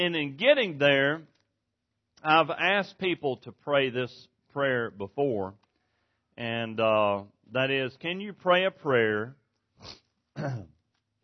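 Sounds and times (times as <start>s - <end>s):
speech: 0.0s - 1.3s, 2.2s - 5.6s, 6.4s - 10.7s
breathy sniff through the nose: 9.8s - 10.2s.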